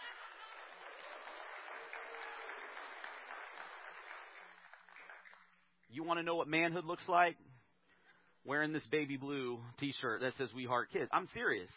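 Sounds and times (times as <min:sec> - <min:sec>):
crowd applauding: 0:00.0 - 0:05.8
speech: 0:05.9 - 0:07.5, 0:08.4 - 0:11.7.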